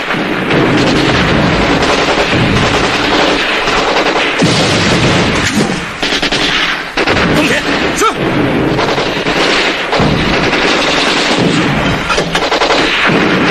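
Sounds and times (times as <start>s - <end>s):
cannon fire in a battle barrage: 0.0s - 13.5s
heavy gunfire: 0.0s - 13.5s.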